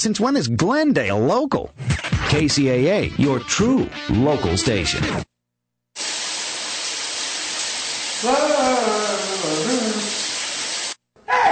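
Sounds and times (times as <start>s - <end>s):
speech: 0.0s - 5.3s, 8.2s - 9.0s
shower water running: 6.0s - 11.0s
person singing in the shower: 8.2s - 10.2s.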